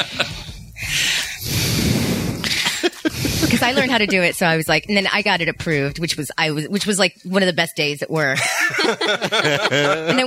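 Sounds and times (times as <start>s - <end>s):
speech: 0.0s - 0.4s, 3.6s - 10.2s
laughter: 0.0s - 0.6s, 2.5s - 4.4s, 8.4s - 10.2s
person imitating heavy wheezy breathing: 0.0s - 4.1s.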